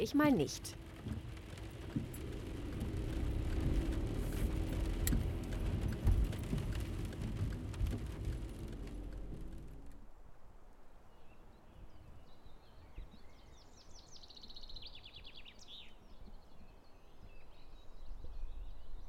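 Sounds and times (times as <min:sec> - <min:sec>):
speech: 0:00.0 - 0:01.3
road noise: 0:00.0 - 0:10.3
car engine drone of a car driving out of town heard inside the cabin: 0:00.6 - 0:10.1
small clicks and taps: 0:00.8 - 0:10.0.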